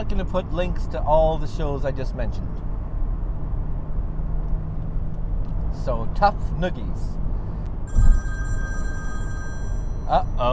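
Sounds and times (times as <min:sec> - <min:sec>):
speech: 0:00.0 - 0:02.7, 0:05.8 - 0:07.3, 0:10.1 - 0:10.5
low rumble: 0:00.0 - 0:10.5
telephone ringing before a voicemail: 0:07.9 - 0:10.5.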